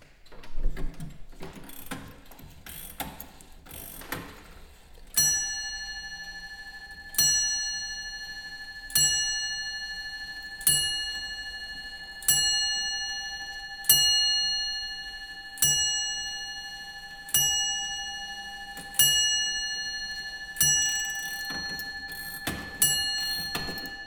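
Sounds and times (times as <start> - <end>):
ratchet clicks from winding a stopped longcase clock from around 1700: 1.6 - 4.3, 21.0 - 24.0
longcase clock bell striking: 5.2 - 24.0.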